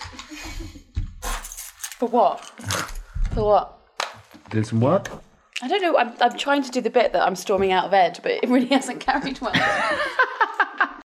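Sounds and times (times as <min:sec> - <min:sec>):
keys jangling as they are handled: 0:01.3 - 0:03.1
speech: 0:02.0 - 0:03.8, 0:04.5 - 0:10.3
laughter: 0:09.2 - 0:11.1.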